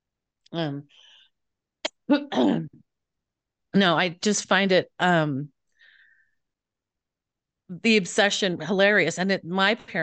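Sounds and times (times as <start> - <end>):
speech: 0.5 - 1.1, 2.1 - 2.8, 3.7 - 5.6, 7.7 - 10.0
person getting over an illness coughing: 2.1 - 2.8.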